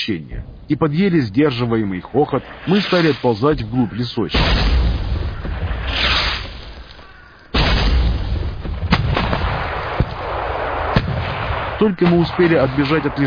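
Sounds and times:
speech: 0:00.0 - 0:04.8, 0:11.8 - 0:13.2
artillery-like explosions near a wood with dull heavy thuds: 0:03.5 - 0:06.8, 0:07.5 - 0:13.2.

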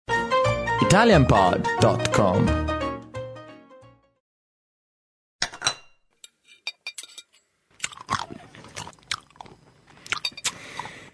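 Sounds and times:
speech: 0:00.8 - 0:02.7
open-mouthed chewing with wet smacks and crunchy bites: 0:07.8 - 0:11.1.

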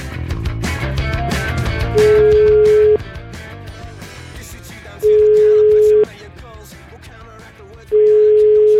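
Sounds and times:
loud music: 0:00.0 - 0:08.7
telephone tone while a call is being placed: 0:02.0 - 0:03.0, 0:05.0 - 0:06.1, 0:07.9 - 0:08.7.

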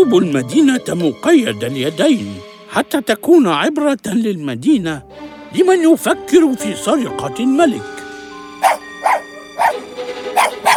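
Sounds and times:
speech: 0:00.0 - 0:08.0, 0:08.6 - 0:08.8
dog barking: 0:08.6 - 0:09.8, 0:10.4 - 0:10.7.

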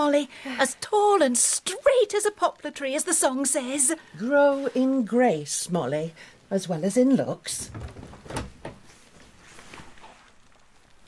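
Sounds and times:
speech: 0:00.0 - 0:08.4
door being shut securely: 0:07.6 - 0:08.9
faint rustling: 0:07.6 - 0:11.0.

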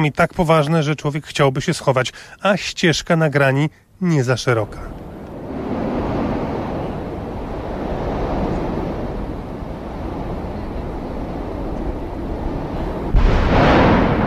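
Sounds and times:
speech: 0:00.0 - 0:05.0
volcano rumbling and roaring inside an erupting crater: 0:04.3 - 0:14.2.

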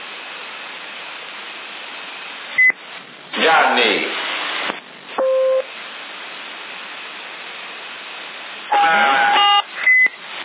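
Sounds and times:
CB radio hiss and static: 0:00.0 - 0:10.4
CB radio roger beep: 0:05.2 - 0:05.7, 0:08.7 - 0:10.2.

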